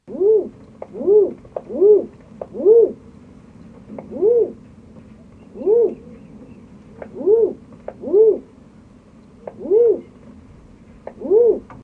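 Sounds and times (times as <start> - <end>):
crested pigeon calls: 0.1 - 3.0, 3.9 - 4.6, 5.3 - 8.5, 9.4 - 10.2, 11.0 - 11.8.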